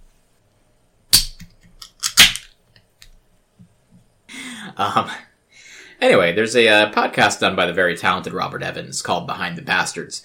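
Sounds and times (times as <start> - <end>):
metal can of fizzy water snapping open: 1.2 - 2.5
speech: 4.8 - 5.3, 6.0 - 10.2.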